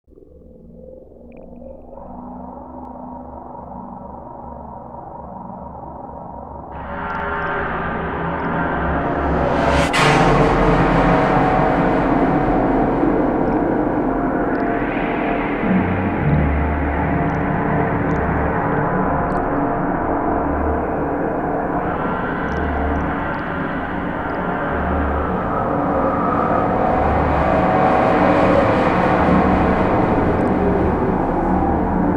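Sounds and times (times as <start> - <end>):
strings: 6.8 - 19.6, 20.5 - 32.1.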